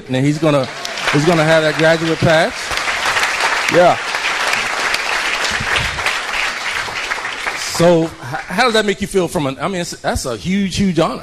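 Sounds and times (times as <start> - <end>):
crowd clapping: 0.0 - 9.0
speech: 0.1 - 2.7, 3.7 - 4.1, 7.8 - 11.2.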